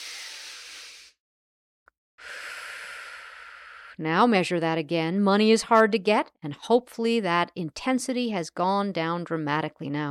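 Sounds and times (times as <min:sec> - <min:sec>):
person taking a breath during a guided tapping exercise: 0:00.0 - 0:01.2, 0:02.2 - 0:04.0
speech: 0:04.0 - 0:10.0.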